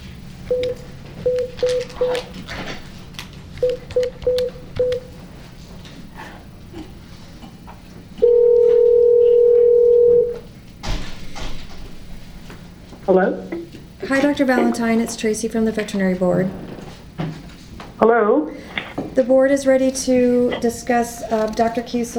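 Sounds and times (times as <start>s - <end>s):
telephone line tone: 0.5s - 2.2s, 3.6s - 5.1s, 8.2s - 10.4s
touch-tone dialing beeps: 0.5s - 2.2s, 3.6s - 5.1s
speech: 14.4s - 16.8s, 18.1s - 22.1s.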